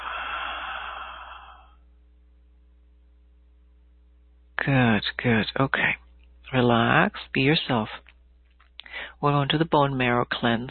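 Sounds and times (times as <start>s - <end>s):
long deep breath during a guided healing meditation: 0.0s - 1.8s, 8.8s - 9.2s
speech: 4.7s - 8.1s, 9.0s - 10.6s.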